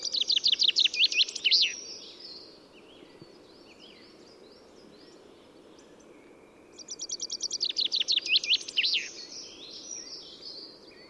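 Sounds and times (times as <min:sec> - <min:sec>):
common chaffinch (Fringilla coelebs) song: 0:00.0 - 0:02.4, 0:06.7 - 0:11.0.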